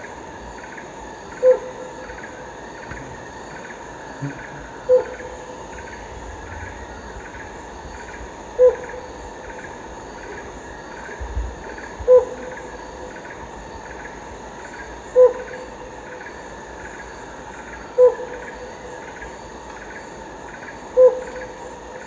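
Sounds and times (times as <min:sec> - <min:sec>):
chorus of buzzing insects in Danum Borneo: 0:00.0 - 0:22.0
helmeted hornbill hooting in Danum Borneo: 0:01.3 - 0:02.3, 0:02.9 - 0:07.3, 0:08.5 - 0:09.6, 0:12.0 - 0:13.2, 0:15.1 - 0:16.1, 0:17.9 - 0:19.0, 0:20.9 - 0:21.8.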